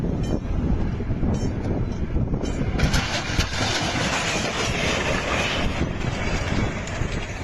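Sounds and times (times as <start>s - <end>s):
wind buffeting the microphone: 0.0s - 7.4s
passenger train on the Eskişehir–Denizli service passing a level crossing in İhsaniye: 2.4s - 7.4s.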